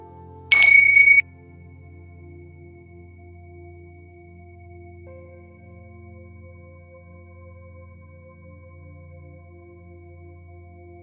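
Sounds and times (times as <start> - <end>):
high-pitched meditation bell ringing: 0.5 - 1.2.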